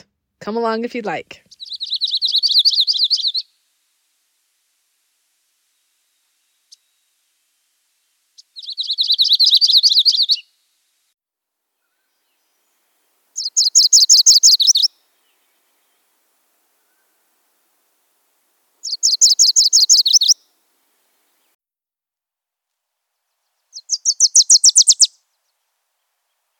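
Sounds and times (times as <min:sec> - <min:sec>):
speech: 0:00.0 - 0:01.5
warbler singing buzzy trilled phrases: 0:01.5 - 0:03.5, 0:08.4 - 0:10.4, 0:13.4 - 0:16.1, 0:18.8 - 0:20.4, 0:23.7 - 0:25.6.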